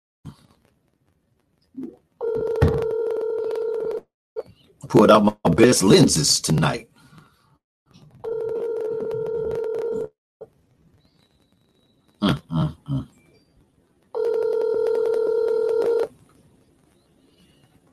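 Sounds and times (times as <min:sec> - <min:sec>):
electronic ringing tone of an unanswered outgoing phone call: 0:02.2 - 0:04.0, 0:08.2 - 0:10.1, 0:14.2 - 0:16.1
speech: 0:04.9 - 0:06.9.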